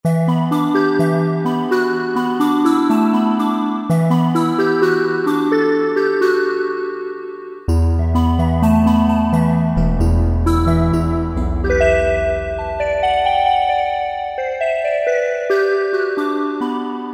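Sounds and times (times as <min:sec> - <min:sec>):
synthesizer factory preset: 0:00.1 - 0:17.1.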